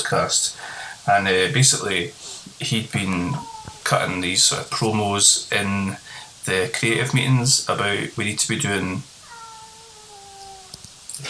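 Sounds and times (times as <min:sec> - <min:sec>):
speech: 0:00.1 - 0:09.1
drawn-out cat meow sliding down in pitch: 0:03.0 - 0:04.2, 0:09.1 - 0:11.2.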